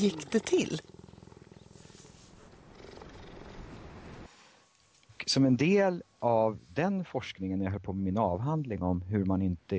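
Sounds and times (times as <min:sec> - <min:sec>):
speech: 0:00.0 - 0:00.9, 0:05.3 - 0:09.7
cheetah purring up: 0:00.0 - 0:04.0.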